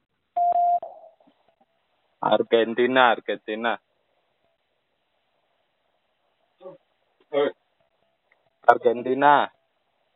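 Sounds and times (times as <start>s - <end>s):
quiz prompt tone electronic beep: 0.4s - 1.1s
speech: 2.2s - 3.9s, 8.7s - 9.6s.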